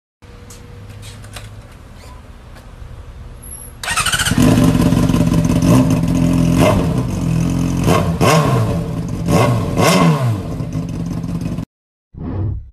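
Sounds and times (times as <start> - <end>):
CBR 100 motorcycle engine: 3.8 - 11.6.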